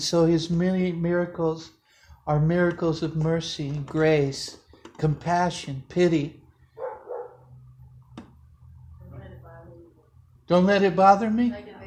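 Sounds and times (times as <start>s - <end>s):
speech: 0.0s - 6.4s, 10.5s - 11.7s
steady low hum: 0.0s - 11.8s
dog barking: 6.8s - 7.5s.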